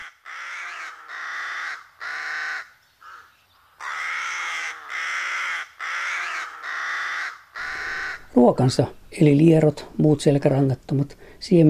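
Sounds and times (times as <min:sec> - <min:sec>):
rook colony cawing: 0:00.0 - 0:08.4
speech: 0:08.4 - 0:11.6.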